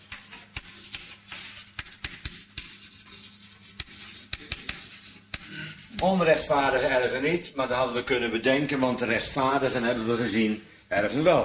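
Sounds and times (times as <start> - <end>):
pen scratching on paper while jotting words: 0.0 - 6.4
faint steady hum: 0.0 - 11.4
speech: 6.0 - 11.4.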